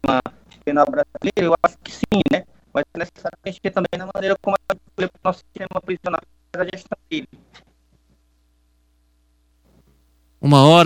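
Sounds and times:
choppy broken-up call audio fragments: 0.0s - 7.5s
steady low electrical hum: 0.0s - 10.8s
speech: 0.7s - 2.5s, 3.4s - 4.6s, 5.3s - 6.2s, 10.5s - 10.8s.

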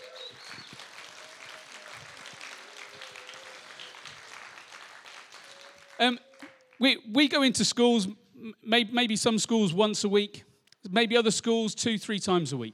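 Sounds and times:
sustained applause from a sizable crowd: 0.0s - 6.9s
scattered cheering voices: 0.0s - 7.0s
speech: 6.0s - 12.7s.

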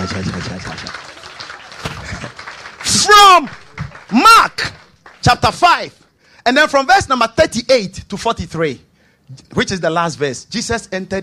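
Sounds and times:
crowd clapping in praise: 0.0s - 6.0s
voices beneath applause: 0.0s - 6.0s
speech: 0.1s - 1.0s, 3.1s - 11.2s.

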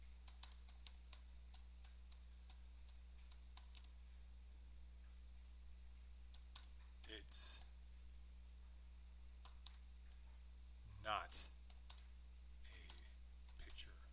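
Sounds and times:
low electrical hum: 0.0s - 14.1s
typing on a computer keyboard: 0.2s - 4.0s, 6.4s - 6.7s, 9.4s - 9.8s, 12.7s - 13.8s
speech: 7.1s - 7.6s, 11.0s - 11.5s.

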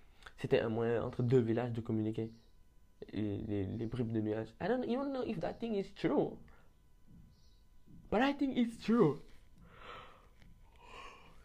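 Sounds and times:
speech: 0.4s - 2.4s, 3.0s - 6.5s, 8.1s - 9.3s
airy breath: 9.6s - 11.4s
person yawning: 10.7s - 11.4s.

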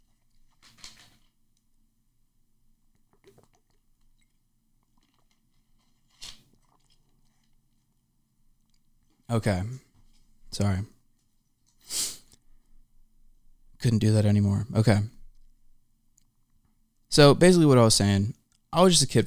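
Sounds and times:
faint handling sounds: 0.0s - 1.9s, 2.8s - 9.3s, 9.9s - 12.9s
person sipping a drink of water: 3.0s - 7.6s
speech: 9.3s - 9.9s, 10.5s - 10.9s, 13.8s - 15.2s, 17.1s - 19.2s.

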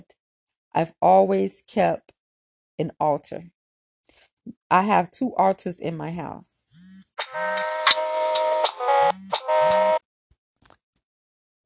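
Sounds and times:
speech: 0.1s - 2.1s, 2.8s - 3.6s, 4.7s - 6.7s
electronic phone ringtone from an incoming call: 6.8s - 10.0s.

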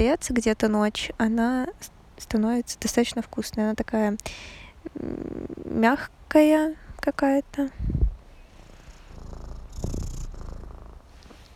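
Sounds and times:
speech: 0.0s - 7.9s
cat purring: 4.8s - 5.8s, 7.9s - 11.5s.

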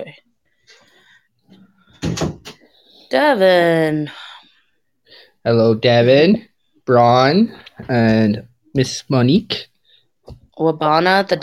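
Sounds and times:
door pushed shut with a solid thud: 2.0s - 2.6s
speech: 3.1s - 4.2s, 5.4s - 9.7s, 10.6s - 11.4s.

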